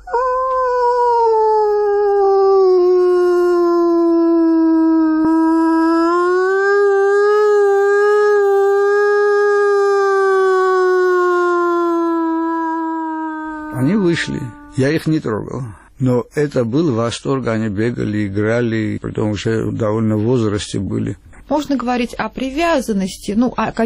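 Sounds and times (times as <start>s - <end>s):
person imitating a wolf howl: 0.0s - 14.9s
speech: 14.8s - 23.8s.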